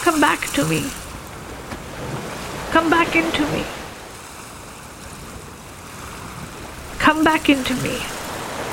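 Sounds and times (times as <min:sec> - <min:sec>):
ocean waves: 0:00.0 - 0:08.7
speech: 0:00.1 - 0:01.0, 0:02.0 - 0:03.8, 0:07.1 - 0:08.2.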